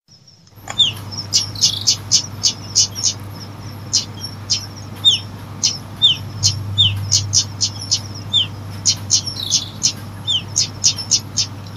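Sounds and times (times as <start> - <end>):
steady low electrical hum: 0.1 - 11.7
lovebird chirping as a lure: 5.1 - 8.5.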